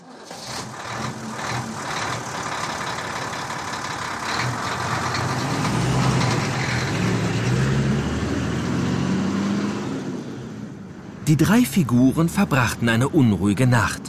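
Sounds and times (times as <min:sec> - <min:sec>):
heavy truck engine droning on bumpy country roads at night: 0:00.0 - 0:14.0
speech: 0:11.3 - 0:14.0.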